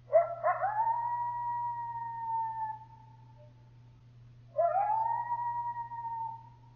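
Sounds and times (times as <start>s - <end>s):
faint low hum: 0.0s - 6.7s
coyote howling: 0.1s - 3.2s, 4.5s - 6.6s.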